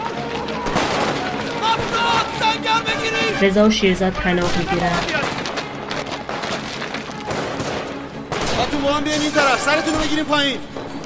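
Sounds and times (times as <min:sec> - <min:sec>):
gunfire from British soldiers advancing while shooting: 0:00.6 - 0:02.4, 0:04.2 - 0:11.0
speech: 0:02.6 - 0:05.2, 0:08.8 - 0:10.7.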